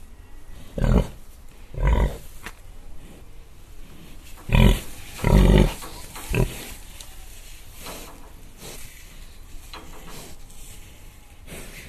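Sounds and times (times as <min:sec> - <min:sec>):
hiss: 0:00.0 - 0:11.8
pig grunting: 0:00.7 - 0:02.2, 0:04.5 - 0:06.8.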